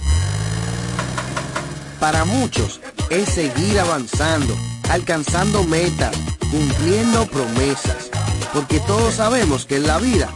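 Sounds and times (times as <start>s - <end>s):
car engine starting and idling: 0.0s - 2.8s
speech: 2.0s - 10.3s.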